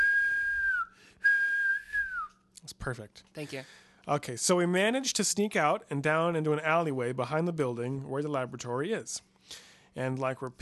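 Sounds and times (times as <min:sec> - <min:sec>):
shrill whistle blasts: 0:00.0 - 0:02.3
speech: 0:02.8 - 0:10.6.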